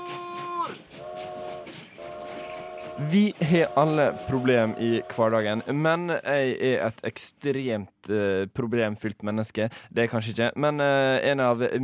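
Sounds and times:
train horn blasts: 0.0s - 5.9s
departing train rolling rumble: 0.0s - 7.2s
speech: 3.0s - 11.8s.

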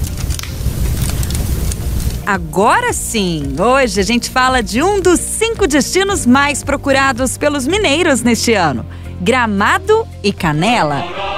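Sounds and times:
low rumbling roar of fire: 0.0s - 2.3s
fire popping and snapping: 0.0s - 5.8s
fire crackling: 0.0s - 7.8s
speech: 2.3s - 11.2s.

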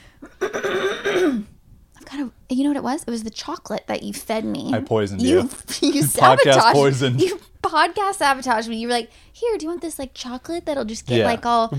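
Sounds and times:
single rough cough drawn out into a throaty rasp: 0.4s - 1.6s
speech: 2.5s - 11.7s.

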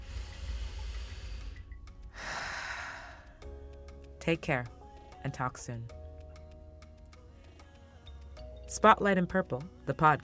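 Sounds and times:
deep slow breath drawn in and released: 0.0s - 3.5s
speech: 4.2s - 6.0s, 8.8s - 10.2s.

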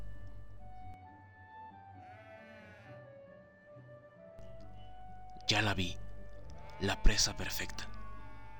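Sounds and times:
sheep bleating in a long wavering cry: 2.5s - 3.0s, 6.6s - 7.4s
speech: 5.5s - 6.0s, 6.8s - 7.9s.

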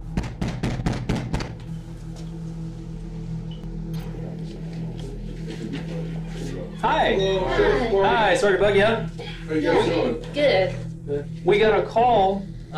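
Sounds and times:
police officers knocking on the front door of a house: 0.0s - 1.5s
low hum: 0.0s - 12.7s
speech: 6.8s - 12.7s.

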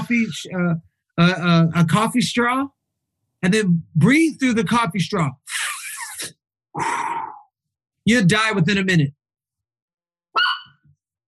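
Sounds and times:
speech: 0.1s - 2.8s, 3.4s - 5.6s, 6.2s - 7.2s, 8.0s - 9.2s
single sharp dog bark: 10.4s - 10.8s.

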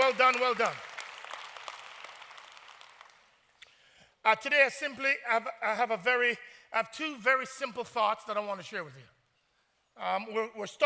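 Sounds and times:
audience applause: 0.0s - 3.4s
speech: 0.1s - 0.9s, 4.2s - 9.1s, 10.0s - 10.8s.

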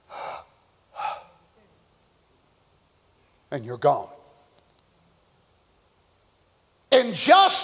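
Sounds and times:
man's voice imitating a last dying breath with a sharp breathy gasp: 0.0s - 1.4s
speech: 3.5s - 4.2s, 7.1s - 7.6s.

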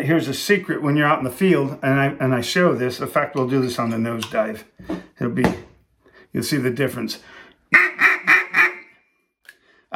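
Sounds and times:
speech: 0.0s - 5.7s, 6.3s - 7.9s
loud raspy quacks blown on a duck call: 7.7s - 9.0s.

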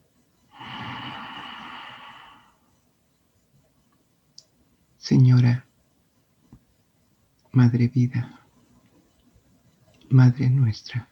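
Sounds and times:
deep inhalation during a guided breathing meditation: 0.5s - 2.6s
faint click: 3.9s - 4.6s
speech: 5.1s - 5.6s, 7.6s - 8.4s, 10.1s - 11.0s.

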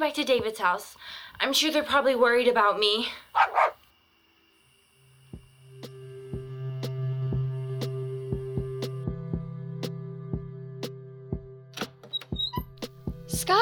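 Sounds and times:
speech: 0.0s - 3.8s, 13.4s - 13.6s
puppy barking: 3.4s - 3.8s
steady low electronic hum: 3.8s - 11.7s.

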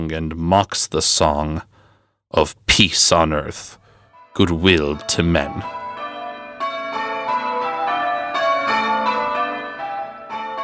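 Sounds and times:
speech: 0.0s - 1.7s, 2.3s - 3.8s, 4.4s - 5.8s
church bells pealing: 4.4s - 10.6s.

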